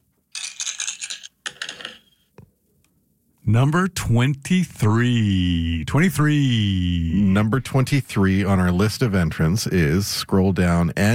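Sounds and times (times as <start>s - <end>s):
dice rattling and clattering: 0.4s - 2.2s
speech: 3.5s - 11.1s.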